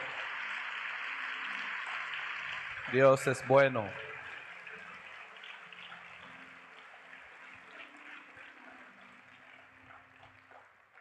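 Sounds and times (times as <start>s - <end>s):
crowd applauding: 0.0s - 10.9s
speech: 2.9s - 4.0s.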